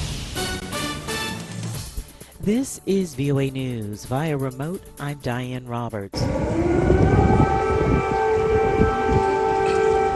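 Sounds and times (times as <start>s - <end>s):
speech: 2.4s - 6.9s
air raid sirens blaring: 6.1s - 10.1s
rumbling low background of noise: 6.2s - 10.1s.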